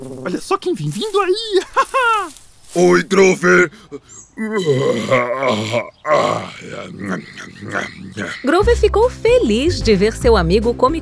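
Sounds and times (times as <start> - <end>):
speech: 0.2 - 11.0
laughter: 1.1 - 2.4
voiced grumbling: 2.8 - 9.7
person yawning: 3.7 - 8.5.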